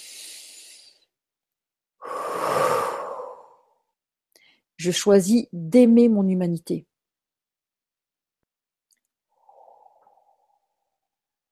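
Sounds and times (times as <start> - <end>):
deep breath drawn in during a guided affirmation exercise: 0.0 - 1.1, 2.0 - 4.7, 9.3 - 11.0
speech: 4.8 - 6.9.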